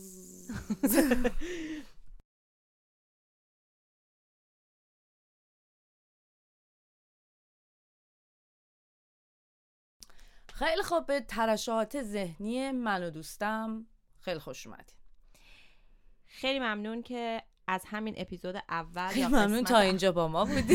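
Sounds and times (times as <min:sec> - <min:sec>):
mosquito buzzing: 0:00.0 - 0:01.5
laughter: 0:00.5 - 0:01.8, 0:20.4 - 0:20.7
speech: 0:00.6 - 0:01.7, 0:10.6 - 0:15.0, 0:16.3 - 0:20.7.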